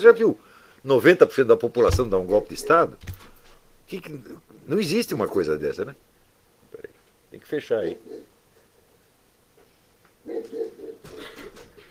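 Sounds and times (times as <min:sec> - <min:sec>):
speech: 0:00.0 - 0:03.3, 0:03.9 - 0:06.1, 0:06.7 - 0:08.3
dog barking and yelping: 0:08.0 - 0:08.3, 0:10.2 - 0:11.4.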